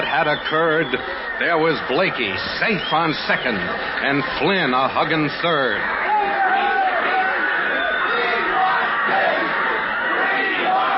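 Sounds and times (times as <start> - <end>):
large crowd yelling and cheering joyously: 0.0 - 10.9
speech: 0.1 - 6.0.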